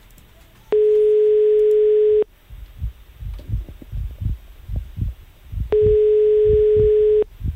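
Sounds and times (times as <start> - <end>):
telephone ringback tone of an unanswered call: 0.7 - 2.3, 5.8 - 7.3
soft low heartbeat-like thumps: 2.4 - 7.5.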